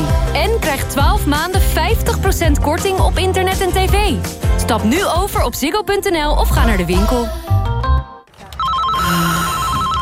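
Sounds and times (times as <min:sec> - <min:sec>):
speech: 0:00.4 - 0:07.6, 0:09.1 - 0:09.4
telephone ringing with an electronic trill: 0:08.6 - 0:10.0.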